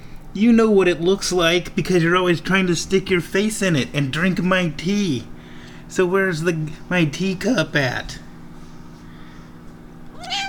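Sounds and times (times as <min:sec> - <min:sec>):
faint steady hum: 0:00.0 - 0:10.4
speech: 0:00.4 - 0:05.3, 0:05.9 - 0:08.2
pet cat meowing in a kitchen: 0:10.1 - 0:10.4.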